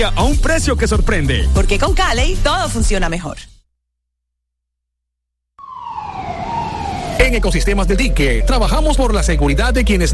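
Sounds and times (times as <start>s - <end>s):
speech: 0.0s - 3.5s, 7.3s - 10.1s
river ambulance siren wailing: 5.6s - 9.4s.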